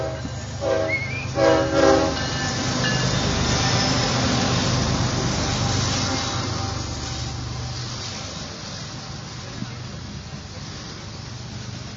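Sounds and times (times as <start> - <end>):
train horn blasts: 0.0 - 2.3
train rumbling on railway tracks in Santa Catarina: 0.0 - 11.9.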